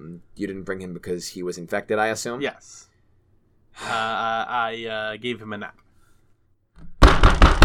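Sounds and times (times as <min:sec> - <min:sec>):
speech: 0:00.2 - 0:02.9, 0:03.8 - 0:05.8
fist pounding heavily on a cell door: 0:06.9 - 0:07.6.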